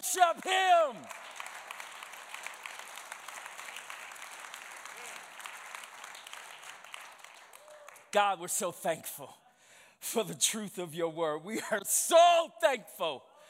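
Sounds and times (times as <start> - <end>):
speech: 0.0 - 1.3, 8.1 - 9.4, 10.0 - 13.3
congregation applauding: 0.0 - 8.2.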